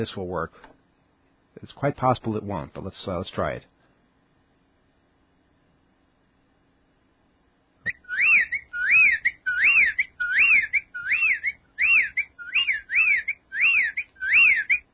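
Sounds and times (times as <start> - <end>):
speech: 0.0 - 0.8, 1.6 - 3.7
whippoorwill calling: 7.8 - 14.9.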